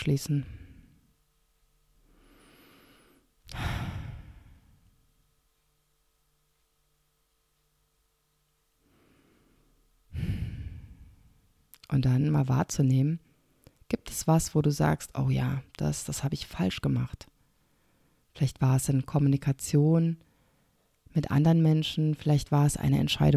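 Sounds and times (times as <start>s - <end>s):
speech: 0.0s - 0.6s, 11.9s - 13.3s, 13.9s - 17.3s, 18.4s - 20.3s, 21.2s - 23.3s
slow deep breaths with sighing exhales: 2.0s - 4.9s, 8.8s - 11.4s, 17.4s - 18.3s.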